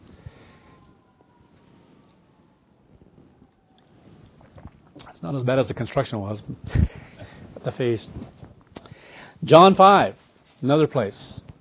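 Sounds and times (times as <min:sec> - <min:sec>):
faint sirens wailing outside: 0:00.0 - 0:04.8
speech: 0:05.1 - 0:07.0, 0:07.6 - 0:08.3, 0:09.4 - 0:11.4
gusty wind noise: 0:06.4 - 0:08.6.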